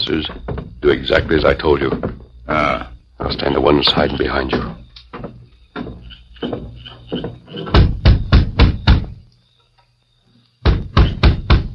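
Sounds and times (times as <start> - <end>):
knocking on a wooden door: 0.0 - 2.4, 4.4 - 9.2, 10.6 - 11.7
speech: 0.1 - 4.8.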